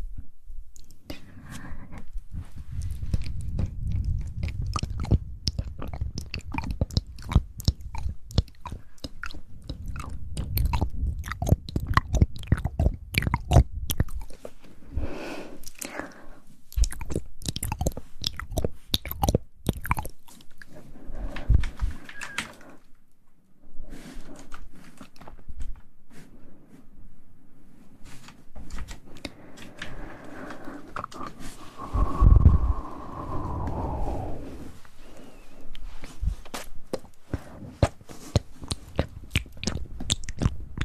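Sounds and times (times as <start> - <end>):
low rumble: 1.3 - 15.2, 31.4 - 36.5
mouth sounds of chewing and biting: 2.5 - 14.6, 16.7 - 21.6, 24.4 - 25.6, 36.9 - 40.8.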